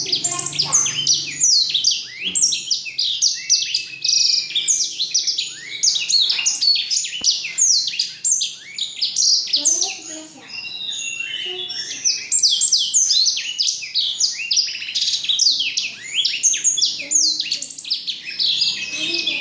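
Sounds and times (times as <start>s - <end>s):
black-throated canary song: 0.0s - 19.3s.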